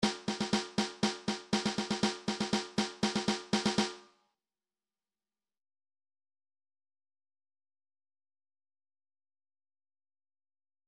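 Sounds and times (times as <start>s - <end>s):
MIDI snare drum: 0.0s - 4.1s.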